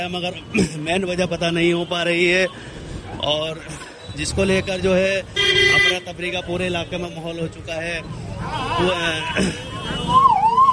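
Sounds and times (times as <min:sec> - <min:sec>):
speech: 0:00.0 - 0:10.2
rumbling street noise: 0:00.0 - 0:10.7
fire engine siren wailing: 0:10.1 - 0:10.7.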